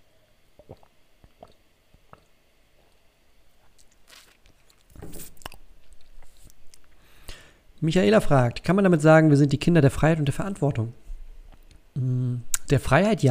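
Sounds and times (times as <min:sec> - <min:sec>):
wet mouth and swallowing sounds: 0:00.4 - 0:07.0
person sipping a drink: 0:00.5 - 0:03.0, 0:03.6 - 0:07.4
speech: 0:07.8 - 0:11.0, 0:12.7 - 0:13.2.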